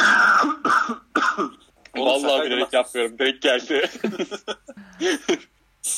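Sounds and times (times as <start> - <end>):
harsh raspy coughs: 0.0 - 1.6
speech: 2.1 - 5.9
laughter: 3.8 - 5.5.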